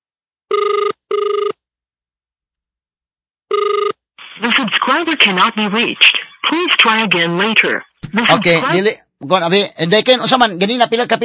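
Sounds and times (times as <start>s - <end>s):
cellphone ringing with double-burst buzzing rings: 0.5s - 1.6s, 3.5s - 4.0s
speech: 5.0s - 11.2s.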